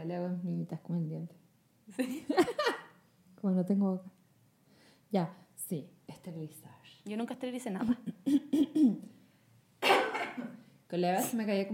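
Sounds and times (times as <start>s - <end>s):
speech: 0.0s - 2.8s, 3.4s - 4.2s, 5.1s - 9.2s, 9.8s - 11.7s
laughter: 2.0s - 2.9s
smoker coughing: 8.2s - 9.0s, 9.8s - 10.6s.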